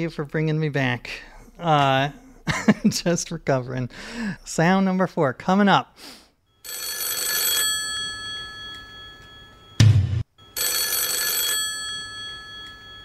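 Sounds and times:
speech: 0:00.0 - 0:06.8
game show telephone bell ringing: 0:06.5 - 0:13.0.

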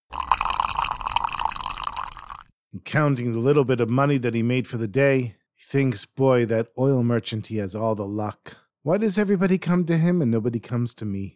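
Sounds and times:
perfume pouring back into large casks: 0:00.0 - 0:02.5
speech: 0:02.7 - 0:11.3.

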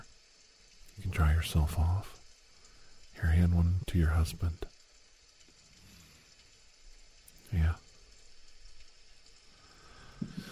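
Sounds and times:
soft steady rain pattering on a porch: 0:00.0 - 0:10.5
speech: 0:01.2 - 0:02.2, 0:03.2 - 0:04.7.

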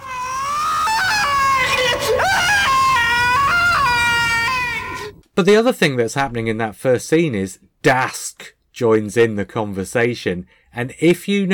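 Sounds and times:
man screaming an anguished death scream: 0:00.0 - 0:05.2
speech: 0:05.4 - 0:11.5.

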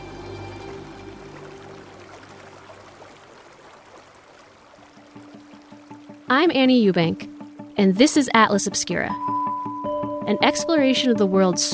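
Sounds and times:
low tonal hum: 0:00.0 - 0:02.4
river water rushing and churning: 0:00.0 - 0:06.4
speech: 0:06.3 - 0:09.3, 0:10.3 - 0:11.7.

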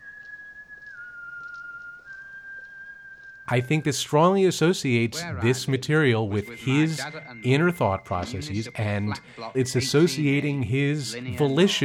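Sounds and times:
man whistling while walking home: 0:00.0 - 0:05.3, 0:06.4 - 0:10.1
speech: 0:03.5 - 0:11.8.

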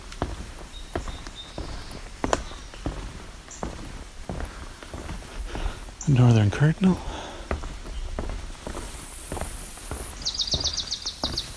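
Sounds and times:
footsteps crunching: 0:00.0 - 0:11.5
swamp sparrow singing a trill: 0:00.7 - 0:03.8, 0:07.9 - 0:11.5
speech: 0:06.1 - 0:07.1.

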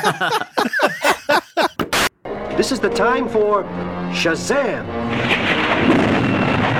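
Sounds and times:
speech: 0:00.0 - 0:01.0, 0:02.6 - 0:06.7
laughter: 0:00.0 - 0:01.8
thunder from a lightning strike: 0:04.9 - 0:06.7.

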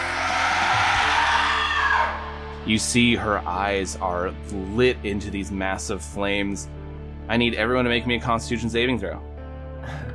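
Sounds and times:
monster shrieking as a beam is shot at it: 0:00.0 - 0:02.4
speech: 0:02.7 - 0:10.0.

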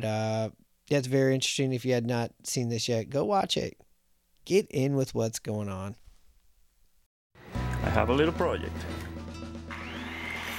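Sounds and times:
speech: 0:00.0 - 0:03.8, 0:04.5 - 0:06.0, 0:07.8 - 0:09.1
power tool motor running and speeding up: 0:09.7 - 0:10.5.

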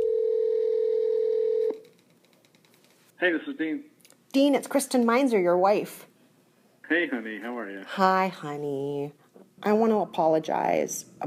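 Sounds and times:
electronic telephone ringing tone as a phone call is placed: 0:00.0 - 0:01.8
quiet telephone line noise: 0:00.0 - 0:11.2
speech: 0:03.2 - 0:06.1, 0:06.9 - 0:11.2.

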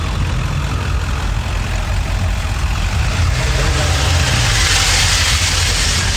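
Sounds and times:
car engine rumbling while rolling forward: 0:00.0 - 0:06.1
hiss from a possible exhaust leak: 0:03.4 - 0:06.1.

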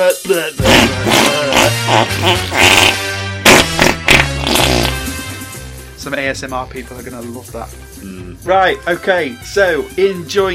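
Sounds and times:
speech: 0:00.1 - 0:03.0, 0:06.0 - 0:10.5
farting noise sound effects: 0:00.6 - 0:05.4.

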